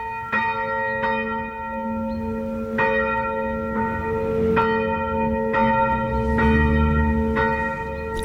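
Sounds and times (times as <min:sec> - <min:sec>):
several church bells ringing together: 0:00.0 - 0:08.2.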